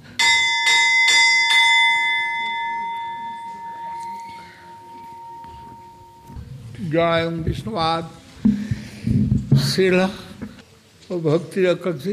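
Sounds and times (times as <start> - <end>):
bell struck with a bright metallic tone: 0.0 - 6.5
faint room noise: 0.0 - 12.1
speech: 6.9 - 8.2, 9.8 - 10.3, 11.1 - 12.1.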